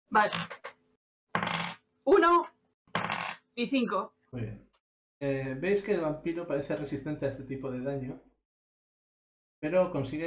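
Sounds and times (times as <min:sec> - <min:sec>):
speech: 0:00.1 - 0:00.6, 0:02.1 - 0:02.5, 0:03.6 - 0:08.3, 0:09.6 - 0:10.2
two six-sided dice rolling across a surface: 0:00.2 - 0:00.8, 0:01.4 - 0:01.8, 0:02.9 - 0:03.4.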